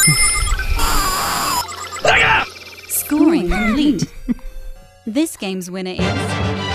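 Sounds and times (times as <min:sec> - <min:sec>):
speech: 0:00.0 - 0:00.3, 0:03.3 - 0:04.1, 0:05.1 - 0:06.6
computer calculating electronic beeps and tones: 0:00.0 - 0:04.7.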